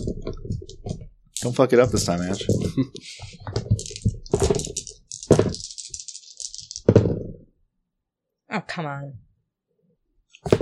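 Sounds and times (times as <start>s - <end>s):
dice for a tabletop game rattling in a cup or hand: 0.0s - 7.4s
speech: 1.4s - 3.3s, 8.8s - 9.3s.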